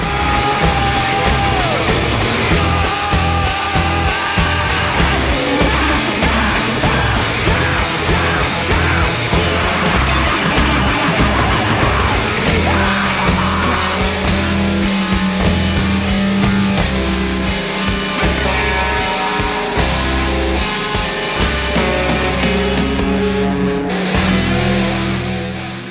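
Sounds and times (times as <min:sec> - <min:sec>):
male singer screaming wildly: 0:00.0 - 0:14.5
loud dense rock song with pounding drums and distorted guitars: 0:00.0 - 0:25.8.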